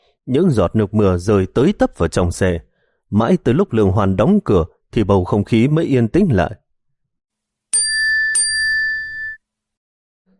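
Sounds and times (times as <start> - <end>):
speech: 0.2 - 6.6
phone notification chime for an incoming message inside a car: 7.8 - 9.4.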